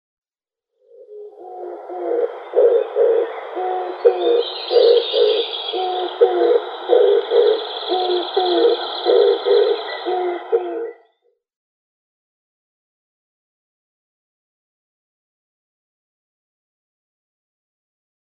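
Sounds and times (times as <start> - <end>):
male Oriental Turtle-Dove orientalis display calling: 0.9 - 11.1.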